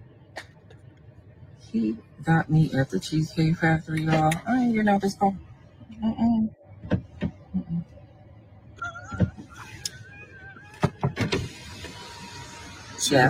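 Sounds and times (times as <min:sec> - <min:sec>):
speech: 0:01.7 - 0:06.6, 0:13.1 - 0:13.2
door creaking open at a chain restaurant: 0:10.6 - 0:12.9.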